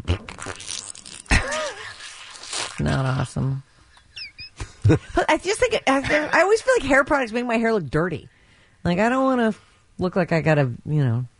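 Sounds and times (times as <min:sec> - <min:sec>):
wet fart sound: 0:00.0 - 0:03.0
speech: 0:02.8 - 0:03.7, 0:04.9 - 0:11.3.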